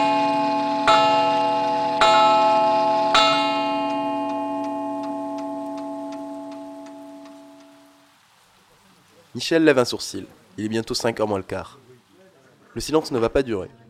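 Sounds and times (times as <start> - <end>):
pendulum wall clock ticking in a quiet corner café: 0.0 - 8.0
speech: 9.4 - 11.8, 12.8 - 13.8.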